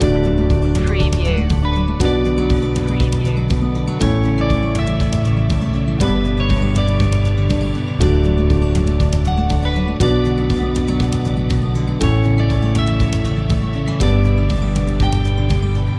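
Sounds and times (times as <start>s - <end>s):
corporate acoustic music loop: 0.0s - 15.9s.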